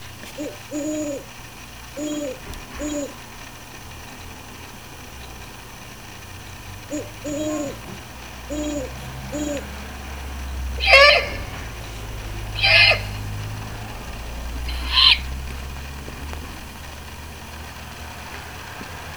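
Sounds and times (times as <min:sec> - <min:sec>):
Great Horned Owl hooting: 0:00.0 - 0:18.7.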